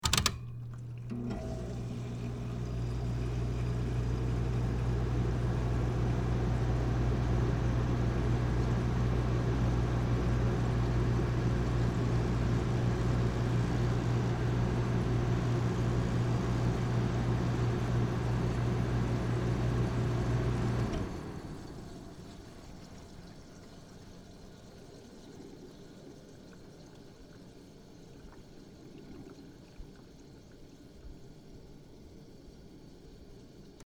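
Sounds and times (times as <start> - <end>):
household air conditioner running on medium setting: 0.0 - 23.5.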